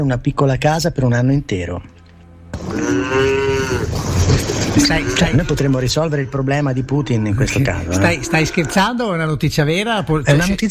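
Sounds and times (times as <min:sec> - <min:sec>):
speech: 0:00.0 - 0:01.9, 0:02.6 - 0:10.6
cow mooing: 0:02.0 - 0:09.0.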